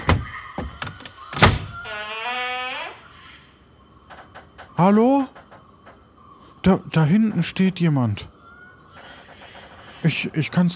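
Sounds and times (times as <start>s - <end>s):
doorknob and latch clunking on a door of a strange house: 0.0s - 2.0s
door of a strange house creaking open: 0.0s - 6.1s, 8.9s - 10.3s
speech: 4.8s - 5.4s, 6.6s - 8.3s, 10.0s - 10.7s.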